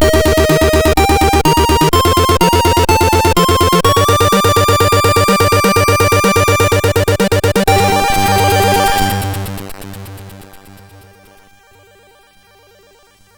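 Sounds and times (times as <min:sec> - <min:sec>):
MOS6581R2 SID synthesizer chip tone: 0:00.0 - 0:09.5.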